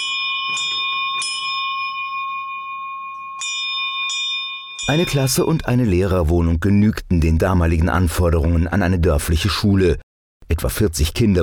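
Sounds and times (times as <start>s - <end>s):
school bell tower ringing: 0.0s - 6.2s
speech: 4.9s - 11.4s.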